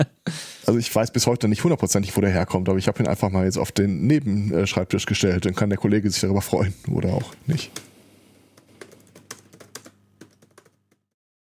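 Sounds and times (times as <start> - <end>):
speech: 0.0 - 7.9
typing on a computer keyboard: 8.6 - 11.1.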